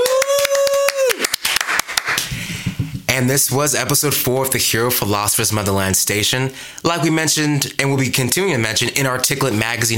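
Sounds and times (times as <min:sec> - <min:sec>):
small group clapping hands: 0:00.0 - 0:03.1
speech: 0:03.2 - 0:09.9.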